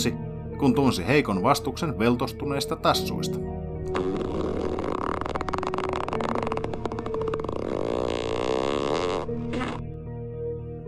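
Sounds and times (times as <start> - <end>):
speech: 0.0 - 4.2
loud drawn-out rasping dog fart: 3.9 - 9.9.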